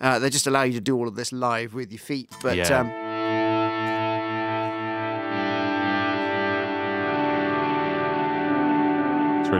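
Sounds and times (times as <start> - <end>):
speech: 0.0 - 3.1
guitar played through Strymon Timeline delay and Big Sky reverb pedals: 2.4 - 9.5.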